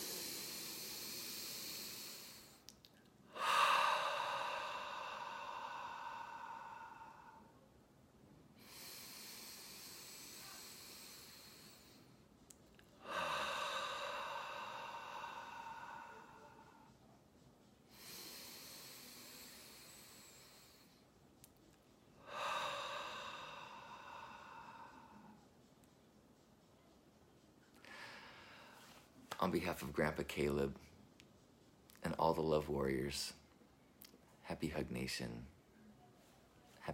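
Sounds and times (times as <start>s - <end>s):
slow hissing breaths drawn in through the nose: 0.0s - 2.7s, 3.3s - 7.6s, 8.6s - 12.2s, 12.8s - 16.9s, 17.9s - 21.0s, 22.2s - 25.4s, 27.8s - 29.2s
speech: 29.4s - 30.9s, 32.3s - 33.4s, 34.6s - 35.6s.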